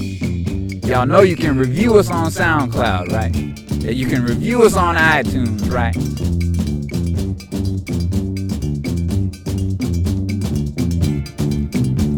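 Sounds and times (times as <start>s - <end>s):
bright cowbell-like clank on the beat: 0.0s - 12.1s
upbeat Afro-rock band groove with bass, chords and percussion: 0.0s - 12.1s
speech: 0.9s - 7.2s.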